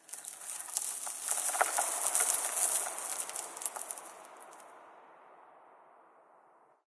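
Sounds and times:
ambient rock debris: 0.0 - 4.8.

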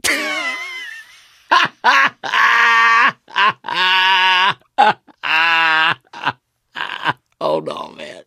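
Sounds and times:
survivor laughing: 0.0 - 7.2.

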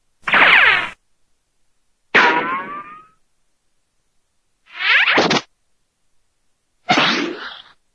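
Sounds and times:
cartoon ricochets: 0.3 - 1.0, 2.2 - 3.2, 4.8 - 5.5, 6.9 - 7.7.

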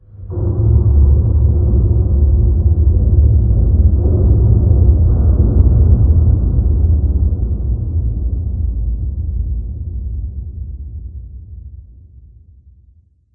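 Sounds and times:
random abstract ambient video game boom: 0.0 - 12.6.

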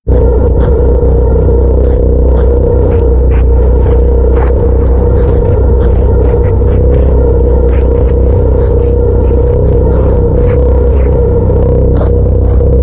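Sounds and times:
ambient message packet sounds: 0.1 - 12.8.

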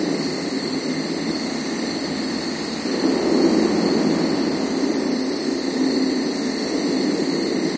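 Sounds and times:
crickets chirping on a rural hilltop: 0.0 - 7.7.

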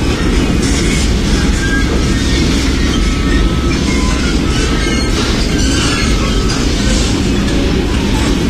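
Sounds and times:
test chamber travel sound: 0.0 - 8.4.

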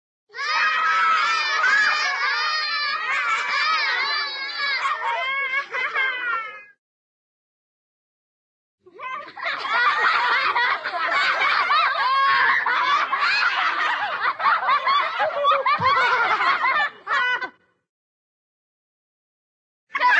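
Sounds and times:
small group of children laughing in a cartoon: 0.4 - 6.8, 8.9 - 17.8, 19.9 - 20.1.

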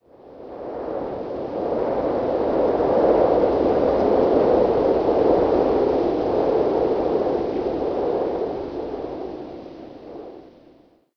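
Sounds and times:
wind in forest trees: 0.0 - 10.9.

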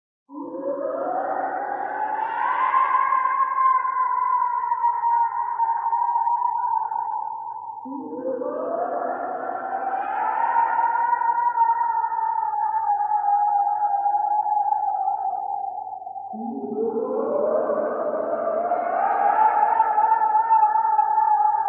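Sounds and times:
eerie cartoon banshee screams and wails: 0.4 - 7.4, 8.0 - 15.6, 16.4 - 21.6.

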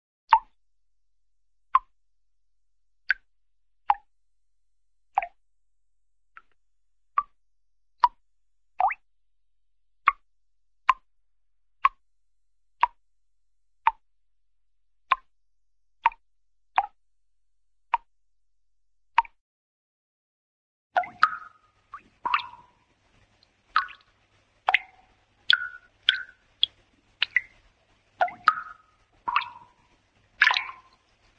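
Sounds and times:
cartoon water drips: 0.3 - 0.6, 1.8 - 2.0, 3.1 - 3.3, 3.9 - 4.1, 5.1 - 5.4, 7.2 - 7.4, 8.0 - 8.2, 8.8 - 9.1, 10.1 - 10.3, 10.9 - 11.1, 11.8 - 12.0, 15.1 - 15.3, 16.0 - 16.2, 16.8 - 17.0, 17.9 - 18.1, 19.2 - 19.4, 21.0 - 31.3.

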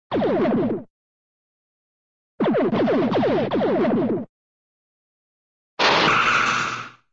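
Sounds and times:
cartoon sci-fi space gun: 0.1 - 0.9, 2.4 - 4.3, 5.8 - 7.0.

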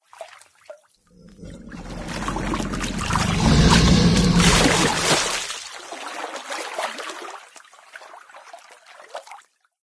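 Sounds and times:
alligator: 1.1 - 5.5.

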